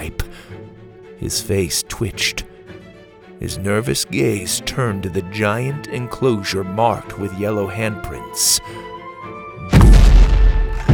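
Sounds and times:
speech: 1.2 - 2.5, 3.4 - 9.0
giant creature smashing through a massive gate: 9.7 - 10.9
heavy hit: 9.7 - 10.9.

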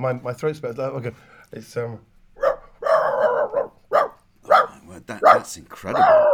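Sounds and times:
speech: 0.0 - 2.1, 5.1 - 6.3
man with a sore throat imitating a dog barking: 2.4 - 6.3.

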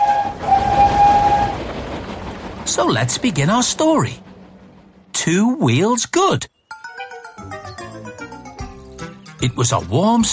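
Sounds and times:
streamlined steam engine whistle: 0.0 - 1.6
speech: 2.8 - 4.3, 5.2 - 6.5, 9.4 - 10.3.

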